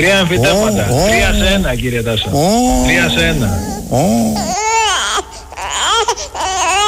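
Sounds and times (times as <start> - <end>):
speech: 0.0 - 4.6
baby wailing in rising and falling cries: 2.3 - 6.8.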